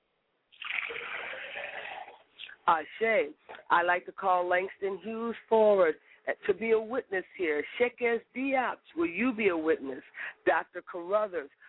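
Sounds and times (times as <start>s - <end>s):
liquid poured out as a libation: 0.5s - 2.4s
speech: 2.7s - 11.6s.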